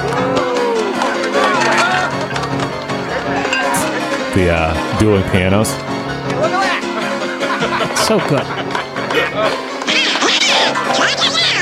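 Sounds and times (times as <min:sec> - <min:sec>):
laughter: 0:00.1 - 0:04.8, 0:06.4 - 0:11.6
speech: 0:04.4 - 0:05.9, 0:07.8 - 0:08.8, 0:09.4 - 0:09.7
cartoon duck voice quacking garbled gibberish: 0:09.8 - 0:11.6.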